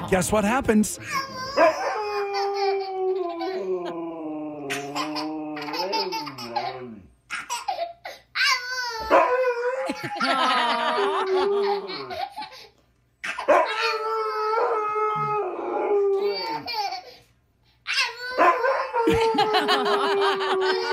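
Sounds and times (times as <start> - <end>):
speech: 0.1 - 1.8
toddler howling: 1.1 - 7.0, 8.3 - 10.0, 13.2 - 17.1, 17.9 - 20.9
husky dog howling: 1.4 - 7.0, 8.9 - 10.1, 13.5 - 16.7, 18.3 - 20.9
toddler giggling: 4.7 - 8.1, 9.9 - 13.5, 16.2 - 17.2, 19.1 - 20.9.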